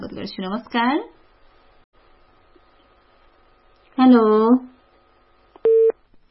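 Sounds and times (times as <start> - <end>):
speech: 0.2 - 1.2, 4.0 - 4.7
telephone line beep after a dropped call: 5.6 - 5.9.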